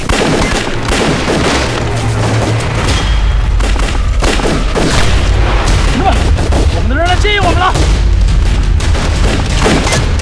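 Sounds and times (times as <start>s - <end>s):
battle gunfire in rapid overlapping shots: 0.0s - 2.9s, 3.5s - 10.2s
deep booms in battle: 2.2s - 10.2s.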